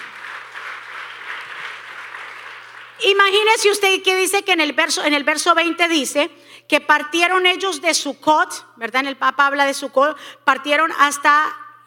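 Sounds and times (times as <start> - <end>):
audience applauding loudly: 0.0 - 3.1
speech: 3.0 - 11.8.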